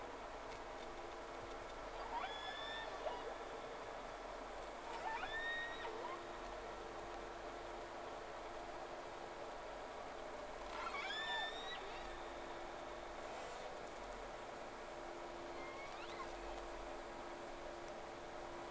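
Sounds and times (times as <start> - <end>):
low machinery drone: 0.0 - 18.6
whale calls with upswept squeals and tonal chirps: 2.0 - 3.6, 4.9 - 6.3, 10.7 - 12.5, 15.5 - 16.6.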